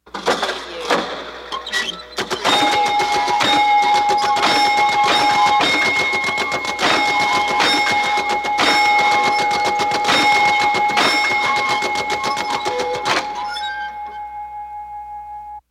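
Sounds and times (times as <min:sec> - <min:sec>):
arcade game clanks: 0:00.0 - 0:14.3
arcade game bells: 0:02.0 - 0:14.6.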